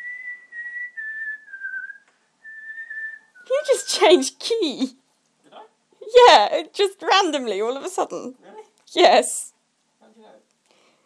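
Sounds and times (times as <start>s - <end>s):
person whistling a wavering tune: 0.0s - 3.9s
speech: 3.6s - 5.0s, 6.1s - 9.5s.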